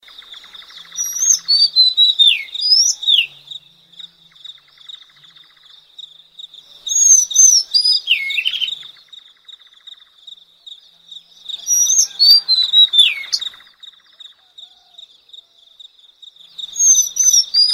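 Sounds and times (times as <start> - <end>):
steady high insect-like whine: 0.0 - 17.7
Madagascar magpie-robin song of sweet slurred whistles: 0.4 - 3.7, 6.8 - 10.1, 11.5 - 15.0, 16.6 - 17.7.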